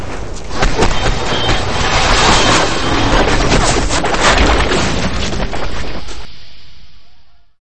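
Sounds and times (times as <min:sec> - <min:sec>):
Apache helicopter crash landing: 0:00.5 - 0:06.0.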